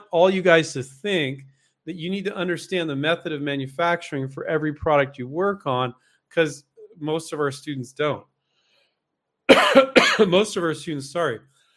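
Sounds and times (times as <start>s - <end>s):
speech: 0.1s - 8.3s, 9.5s - 11.5s
person coughing: 9.5s - 10.4s
throat clearing: 9.5s - 10.4s.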